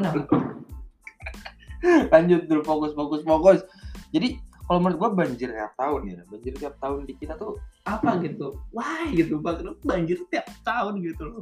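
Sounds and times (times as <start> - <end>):
speech: 0.0 - 0.6, 1.8 - 11.4
fireworks going off outside: 0.1 - 0.8
laughter: 1.1 - 2.0.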